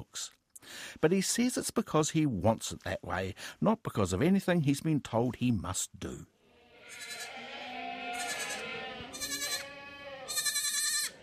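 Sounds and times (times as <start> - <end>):
speech: 0.0 - 6.3
goats bleating on a dairy goat farm: 6.5 - 11.2.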